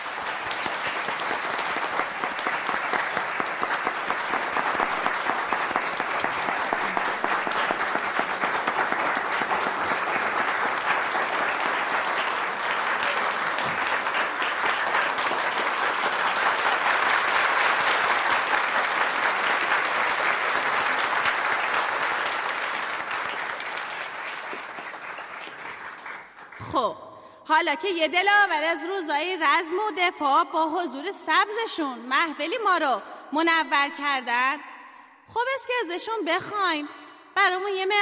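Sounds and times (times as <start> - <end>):
large audience applauding at an award ceremony: 0.0 - 26.7
speech: 27.5 - 34.7, 35.3 - 37.9.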